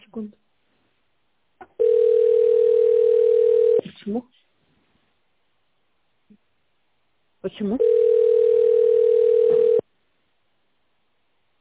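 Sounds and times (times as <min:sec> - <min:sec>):
speech: 0:00.2 - 0:00.4, 0:04.1 - 0:04.4, 0:07.4 - 0:08.1
telephone ringing tone: 0:01.8 - 0:03.8, 0:07.8 - 0:09.8.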